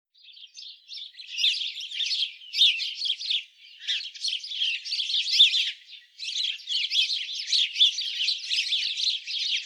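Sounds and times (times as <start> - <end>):
house sparrow Passer domesticus chirping: 0.2 - 9.6.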